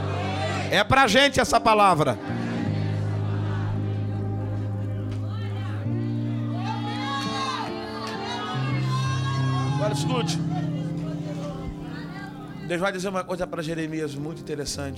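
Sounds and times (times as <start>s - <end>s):
church audience shouting at one another: 0.0s - 0.7s, 2.2s - 12.6s
speech: 0.7s - 2.4s, 9.9s - 10.4s, 12.7s - 14.9s.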